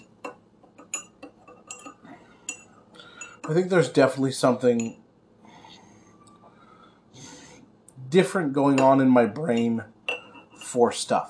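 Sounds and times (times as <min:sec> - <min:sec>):
spoon clinking against a cup while stirring tea: 0:00.0 - 0:03.6, 0:08.8 - 0:10.8
speech: 0:03.5 - 0:05.0, 0:08.1 - 0:10.0, 0:10.7 - 0:11.2.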